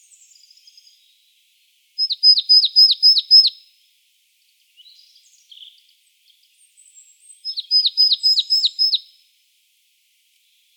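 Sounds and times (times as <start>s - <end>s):
Poecile palustris calling with clipped high falling notes: 2.0s - 3.5s, 7.5s - 9.0s.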